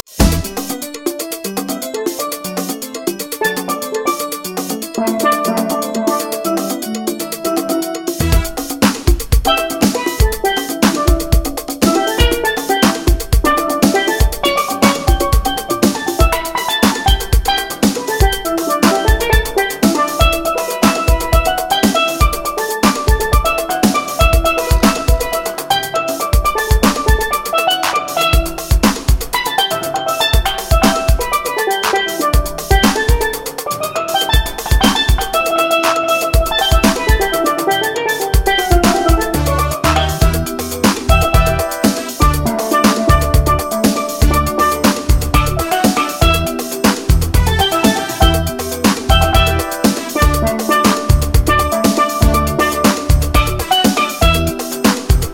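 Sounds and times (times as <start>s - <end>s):
instrumental steel drum music: 0.0s - 55.3s.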